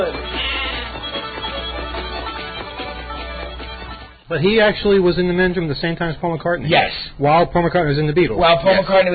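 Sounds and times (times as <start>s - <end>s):
sheep bleating: 0.1s - 1.3s
speech: 4.3s - 9.1s.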